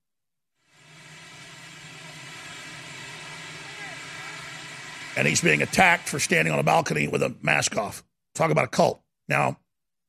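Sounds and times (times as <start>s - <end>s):
presidential helicopter running on a landing pad: 0.6s - 7.3s
speech: 5.2s - 10.0s.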